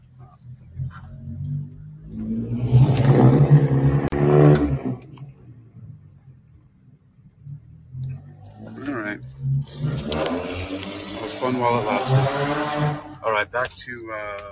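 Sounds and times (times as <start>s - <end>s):
car that has been doing donuts driving away with engine revving: 0.1s - 6.4s, 7.2s - 13.5s
speech: 11.5s - 14.5s.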